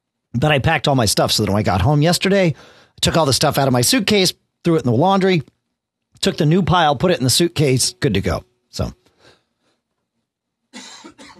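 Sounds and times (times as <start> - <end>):
speech: 0.4 - 5.6, 6.2 - 9.0
breathy sounds: 2.6 - 3.0
person coughing: 10.8 - 11.3
throat clearing: 10.8 - 11.3.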